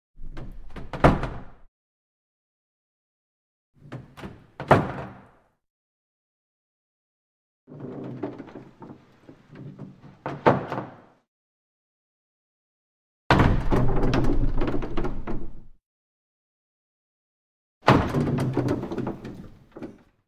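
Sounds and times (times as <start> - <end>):
cupboard opening and closing: 0.2 - 1.7, 3.8 - 5.4, 7.7 - 11.2, 13.4 - 15.8, 17.9 - 20.2.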